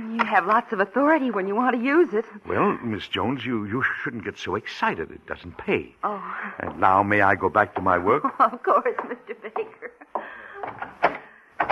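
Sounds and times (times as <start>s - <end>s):
speech: 0.2s - 10.0s
door handle rattled and tugged on a locked door: 10.6s - 11.7s.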